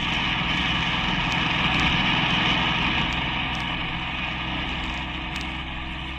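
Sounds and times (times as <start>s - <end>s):
car engine droning while driving: 0.0s - 6.1s.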